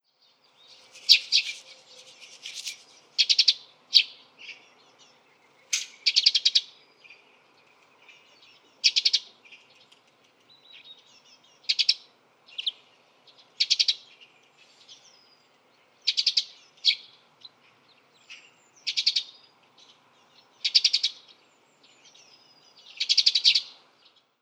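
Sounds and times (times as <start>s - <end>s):
Eurasian tree sparrow Passer montanus call: 0.4s - 7.2s, 7.8s - 9.9s, 10.5s - 12.8s, 13.5s - 15.4s, 16.0s - 17.1s, 18.2s - 19.4s, 20.3s - 23.8s.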